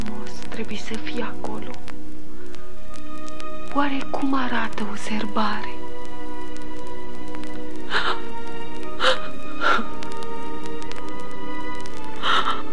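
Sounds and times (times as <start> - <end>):
speech: 0.6 - 2.0, 3.7 - 5.8
girl crying in breathy whimpering sobs: 7.8 - 10.1, 12.2 - 12.7.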